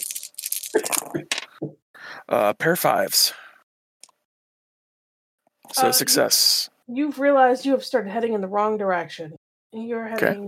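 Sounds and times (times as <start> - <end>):
four dice rolled for a game check, rattling and clattering: 0.0 - 1.5
speech: 2.3 - 3.4, 5.7 - 10.4.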